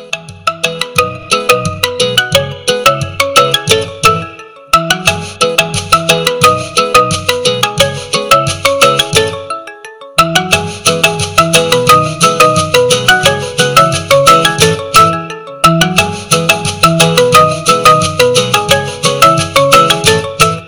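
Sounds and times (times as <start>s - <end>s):
Redmi Note 9 Pro 5G original phone ringtone: 0.0s - 20.6s.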